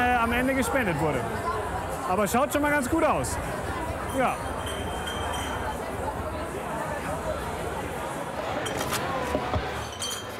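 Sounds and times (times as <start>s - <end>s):
crowd hubbub with chatter: 0.0s - 10.3s
speech: 0.2s - 4.6s
deposit cups and glasses clinking as they are gathered up: 4.1s - 5.9s, 8.6s - 9.0s, 9.6s - 10.3s.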